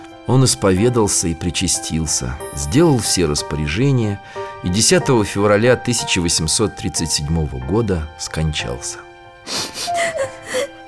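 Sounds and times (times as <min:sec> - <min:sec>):
speech: 0:00.3 - 0:10.0
gasping breaths: 0:09.5 - 0:10.8
person crying in shaky sobs and whimpering wails: 0:09.5 - 0:10.8.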